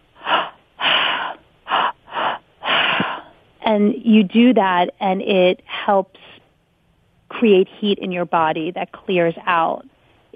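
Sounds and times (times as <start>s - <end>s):
forceful breathwork breaths through the mouth, belly breath, chest breath and exhale: 0.1s - 3.4s
speech: 3.7s - 6.3s, 7.4s - 10.3s.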